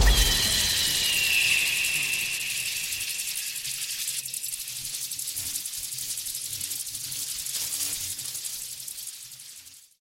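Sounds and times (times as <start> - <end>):
anime lightning attack effect: 0.0 - 4.2.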